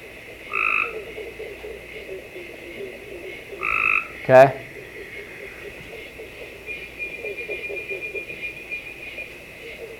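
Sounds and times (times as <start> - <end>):
Cope's gray tree frog buzzy trill: 0.0 - 9.9
low steady hum: 0.0 - 9.9
speech: 4.3 - 4.6.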